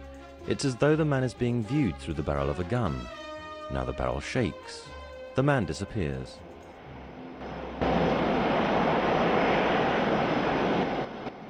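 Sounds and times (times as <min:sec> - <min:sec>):
speech: 0:00.5 - 0:06.5
Boeing 747 jumbo jet engine roar cruising through the night sky: 0:06.8 - 0:11.4.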